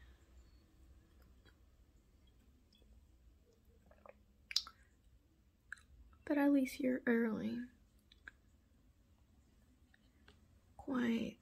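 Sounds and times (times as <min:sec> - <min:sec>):
low hushed room hum: 0:00.0 - 0:11.4
person sipping and swallowing water: 0:03.8 - 0:04.8
soft wet mouth clicks: 0:03.9 - 0:04.8
speech: 0:06.3 - 0:07.8, 0:11.0 - 0:11.4.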